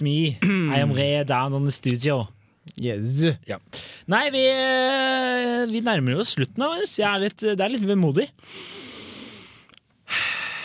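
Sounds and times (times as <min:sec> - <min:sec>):
speech: 0:00.0 - 0:08.8
heavy breathing: 0:03.7 - 0:04.1, 0:08.4 - 0:10.6.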